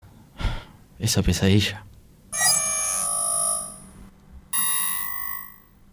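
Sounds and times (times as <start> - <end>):
speech: 1.0 - 2.4
electronic alarm ringing in harsh bright multi-tone bursts: 2.4 - 4.0, 4.6 - 5.8.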